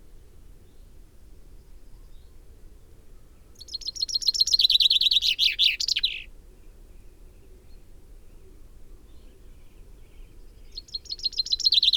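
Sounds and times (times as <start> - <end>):
Common chaffinch singing: 3.6 - 6.3, 10.7 - 11.9.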